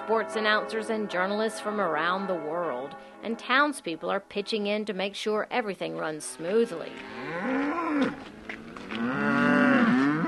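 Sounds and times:
speech: 0:00.1 - 0:08.3
Charolais cow mooing on a farm outside Saumur: 0:06.4 - 0:10.2.

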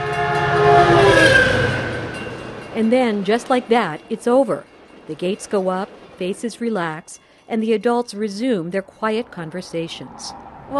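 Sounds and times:
train horn blaring: 0:00.0 - 0:03.6
massive silver commuter train hurtling through a railroad crossing: 0:00.0 - 0:10.7
speech: 0:02.8 - 0:10.7.

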